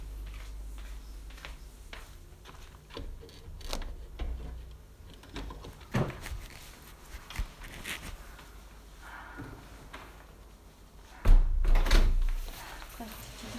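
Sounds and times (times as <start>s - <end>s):
door opening with clunk and rattle: 2.8s - 6.5s, 11.3s - 12.4s.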